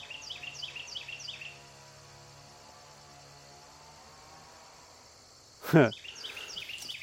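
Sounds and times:
bird chirps in a wooded meadow: 0:00.0 - 0:01.6, 0:05.8 - 0:07.0
engine drone: 0:00.0 - 0:07.0.

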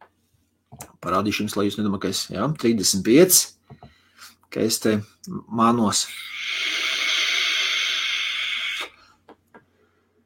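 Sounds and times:
speech: 0:01.0 - 0:03.6, 0:04.5 - 0:06.7
puff drawn from a vape mod set to 35 watts: 0:06.1 - 0:09.0.

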